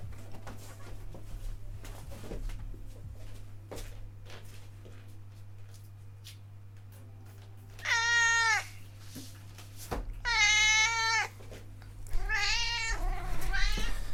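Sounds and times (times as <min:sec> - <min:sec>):
low steady hum: 0:00.0 - 0:14.1
cat meowing: 0:07.8 - 0:08.8, 0:10.2 - 0:11.4, 0:12.1 - 0:14.1.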